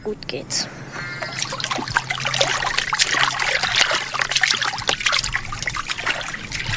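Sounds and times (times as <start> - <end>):
water sloshing and splashing as someone moves through a river: 1.0 - 6.7.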